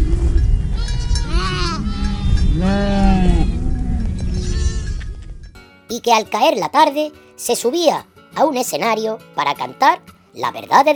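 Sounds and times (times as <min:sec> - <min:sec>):
steady outdoor din: 0:00.0 - 0:05.6
goats bleating: 0:00.8 - 0:03.2, 0:04.3 - 0:05.0
speech: 0:06.0 - 0:10.9.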